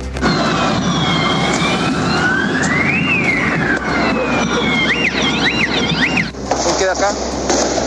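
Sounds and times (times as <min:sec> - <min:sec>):
loud dense street din during clashes: 0:00.0 - 0:07.8
police sirens wailing during street clashes on the Alameda at Estación Central: 0:00.0 - 0:07.8
faster yelping siren: 0:00.2 - 0:06.4.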